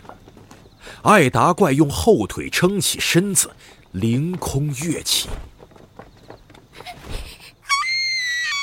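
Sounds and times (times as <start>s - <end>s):
speech: 1.0s - 5.5s
little girl's piercing high-pitched scream: 7.6s - 8.6s.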